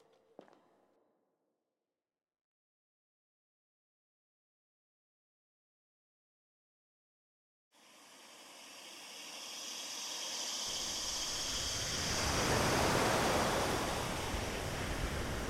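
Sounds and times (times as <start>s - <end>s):
gentle surf of calm sea waves: 7.8s - 15.4s.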